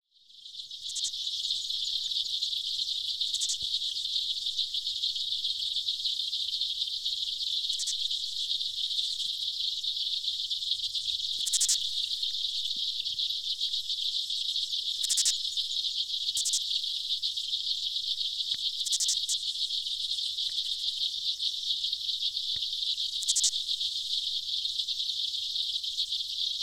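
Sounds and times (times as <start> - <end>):
aquatic insects: 0.1 - 26.6.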